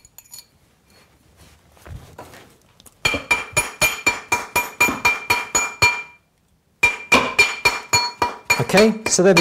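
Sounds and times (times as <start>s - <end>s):
hammer tapping metal ring into shape: 3.0s - 6.2s, 6.8s - 9.4s
speech: 8.7s - 9.4s.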